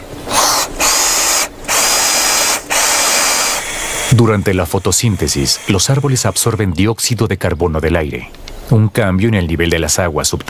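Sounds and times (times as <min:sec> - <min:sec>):
power drill whirring: 0:00.3 - 0:06.6
speech: 0:04.1 - 0:10.4.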